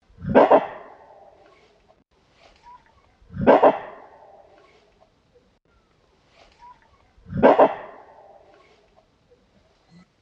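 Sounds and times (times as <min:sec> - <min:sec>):
gorilla barks with echoes: 0:00.2 - 0:01.4, 0:03.3 - 0:04.6, 0:07.2 - 0:08.7.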